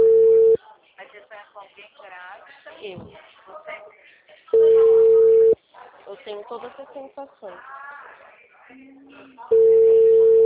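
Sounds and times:
phone ringing tone while calling someone: 0.0s - 0.6s, 4.6s - 5.6s, 9.5s - 10.4s
speech: 6.5s - 7.8s, 8.7s - 9.8s.

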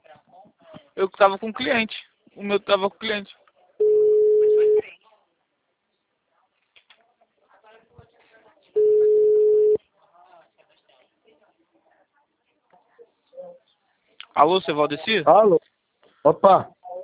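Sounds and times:
faint scattered sounds: 0.0s - 17.0s
speech: 1.0s - 3.4s, 14.4s - 16.8s
telephone tone beeps after a dropped call: 3.8s - 4.8s, 8.8s - 9.8s.

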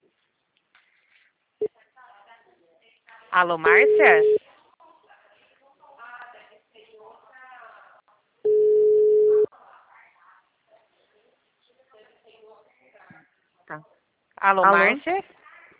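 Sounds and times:
speech: 3.3s - 4.4s, 14.5s - 15.4s
steady telephone tone after a dropped phone call: 3.7s - 4.4s, 8.5s - 9.5s.

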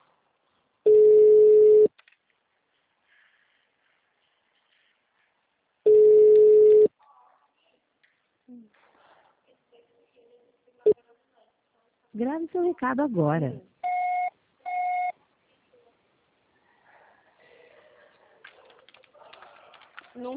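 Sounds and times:
phone ringback tones from an unanswered call: 0.9s - 1.9s, 5.9s - 6.9s, 13.8s - 15.1s
speech: 12.2s - 13.7s.

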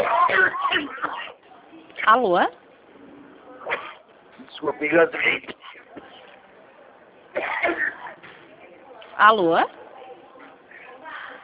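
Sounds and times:
harsh thin coughs after choking during a phone call: 0.0s - 1.4s, 3.6s - 4.0s, 7.3s - 8.2s
speech: 2.1s - 2.6s, 4.6s - 5.6s, 9.2s - 9.8s.

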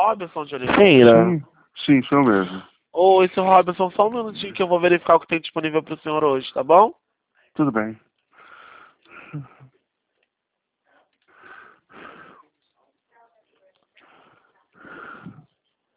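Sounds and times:
speech: 0.0s - 7.0s, 7.6s - 8.0s, 9.3s - 9.5s
heavy labored panting breaths: 11.3s - 12.6s, 14.0s - 15.6s.

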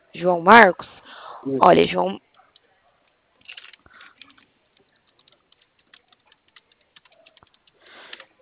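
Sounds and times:
speech: 0.1s - 2.2s
computer keyboard keys clattering while typing a message: 2.2s - 8.4s.

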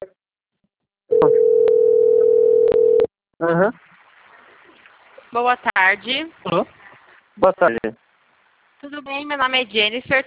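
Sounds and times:
electronic telephone tone of an incoming call on a phone line: 1.1s - 3.1s
speech: 1.2s - 1.4s, 3.4s - 3.9s, 5.3s - 6.8s, 7.4s - 8.0s, 8.8s - 10.2s.

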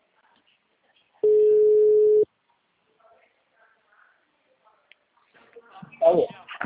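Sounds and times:
electronic ringback tone on a telephone line: 1.2s - 2.2s.

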